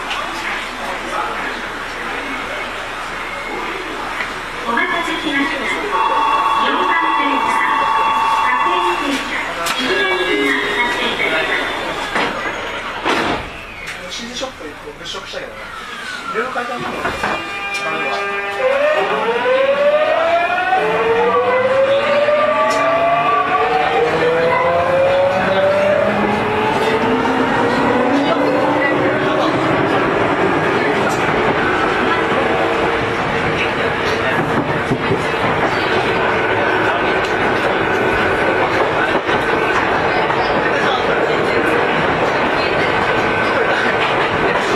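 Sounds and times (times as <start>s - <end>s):
9000 series train running between Naka-Meguro and Daikanyama: 0.0s - 44.7s.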